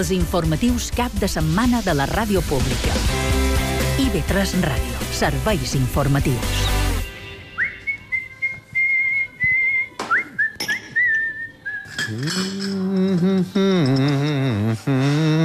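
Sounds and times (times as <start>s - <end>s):
speech: 0.0s - 3.4s, 4.0s - 6.8s
person whistling a tune: 7.5s - 15.4s.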